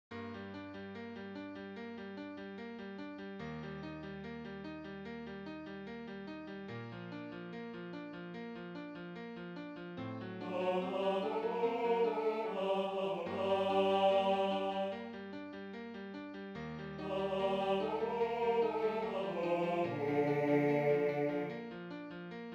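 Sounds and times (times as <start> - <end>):
tenor and bass voices singing a Christmas carol: 10.5 - 15.0, 17.0 - 21.6.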